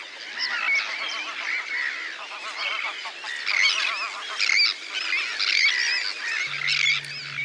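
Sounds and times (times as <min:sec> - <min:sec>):
colony of Arctic and common terns screeching at Ladies Island Lake, Wexford: 0:00.5 - 0:07.4
low hum: 0:06.4 - 0:07.4.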